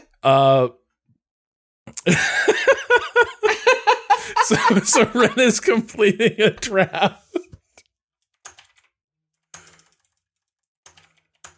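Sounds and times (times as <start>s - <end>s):
speech: 0.2s - 0.8s, 2.0s - 2.3s, 4.3s - 7.2s
laughter: 2.0s - 7.6s
typing on a computer keyboard: 8.3s - 11.5s.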